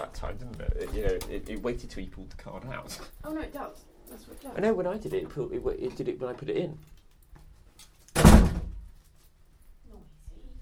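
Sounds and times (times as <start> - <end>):
speech: 0.1 - 7.0
heavy door slamming shut: 8.1 - 8.9.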